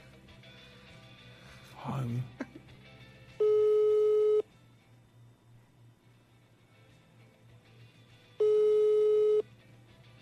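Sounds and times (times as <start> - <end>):
telephone line ringing tone while a call is being placed: 3.4 - 4.4, 8.4 - 9.4.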